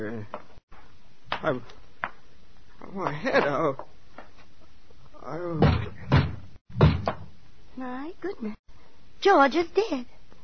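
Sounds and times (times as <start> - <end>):
speech: 0.0 - 0.4, 1.4 - 1.8, 2.9 - 3.9, 5.2 - 6.0, 7.8 - 8.6, 9.2 - 10.2
police pounding on a door: 5.6 - 7.3.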